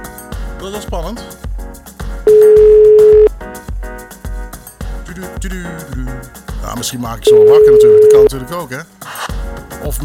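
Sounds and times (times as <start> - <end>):
music: 0.0 - 10.0
speech: 0.6 - 1.5, 5.2 - 9.0, 9.8 - 10.0
telephone ringing tone on an outgoing call: 2.3 - 3.3, 7.3 - 8.3.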